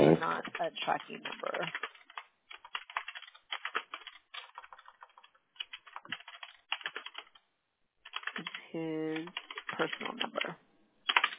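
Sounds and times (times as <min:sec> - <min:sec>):
typing on a computer keyboard: 0:00.4 - 0:07.4, 0:08.1 - 0:08.6, 0:09.2 - 0:10.5, 0:11.1 - 0:11.3
speech: 0:00.6 - 0:01.9, 0:08.8 - 0:10.7.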